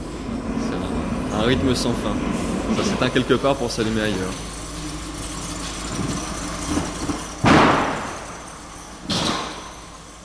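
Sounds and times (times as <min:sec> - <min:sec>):
delivery truck engine idling: 0:00.0 - 0:10.2
speech: 0:01.4 - 0:04.5
bundles of newspapers unloaded from a delivery truck: 0:05.9 - 0:08.3.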